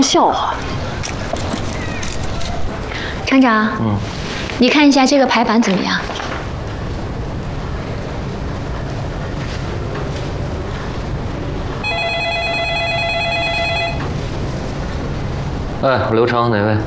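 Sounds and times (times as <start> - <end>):
speech: 0.0 - 0.7, 3.3 - 6.2, 15.8 - 16.8
low rumble: 0.0 - 16.8
telephone ringing with an electronic tone: 11.8 - 14.2.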